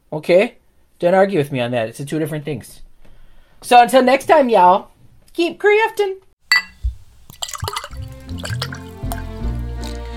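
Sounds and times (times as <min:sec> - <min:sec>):
speech: 0:00.1 - 0:02.9, 0:03.6 - 0:06.2
sherry poured into a glass: 0:06.5 - 0:10.1.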